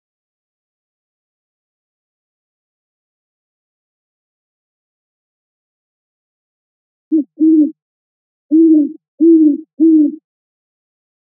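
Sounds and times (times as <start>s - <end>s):
great horned owl giving low mellow hoots: 7.1s - 7.8s, 8.5s - 10.2s.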